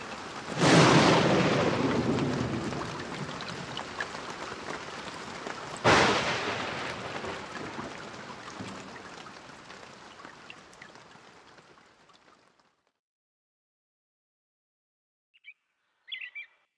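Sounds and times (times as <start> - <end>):
steady rain: 0.0 - 13.0
thunderclaps: 0.2 - 9.8.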